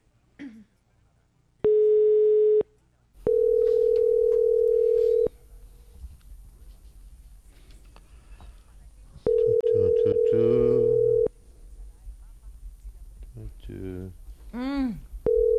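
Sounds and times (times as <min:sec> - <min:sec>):
telephone ringback tone from an unanswered call attempt: 0:01.7 - 0:02.6, 0:03.3 - 0:05.3, 0:09.3 - 0:11.3, 0:15.3 - 0:15.5.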